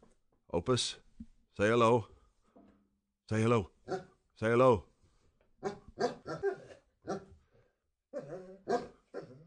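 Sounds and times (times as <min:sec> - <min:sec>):
speech: 0:00.5 - 0:02.1, 0:03.3 - 0:04.9, 0:05.6 - 0:07.3
basset hound barking in deep drawn-out bays: 0:05.6 - 0:07.4, 0:08.1 - 0:09.4.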